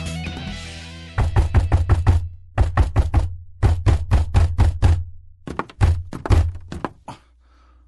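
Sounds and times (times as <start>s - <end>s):
rapid forceful knocking on a door: 1.2s - 7.2s.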